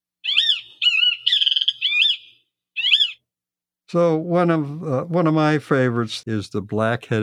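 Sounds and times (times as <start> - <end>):
kiskadee calling harsh raspy phrases: 0.2 - 3.3
speech: 3.9 - 7.2.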